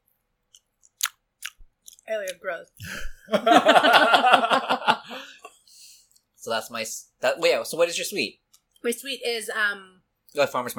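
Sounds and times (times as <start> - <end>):
munching on raspberries: 0.5 - 2.9
speech: 2.1 - 4.6, 6.5 - 10.7
laughter: 2.8 - 5.5.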